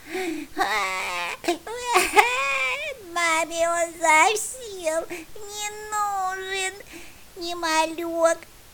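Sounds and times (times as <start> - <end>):
child crying in loud wailing sobs: 0.6 - 6.8
speech: 7.4 - 8.5.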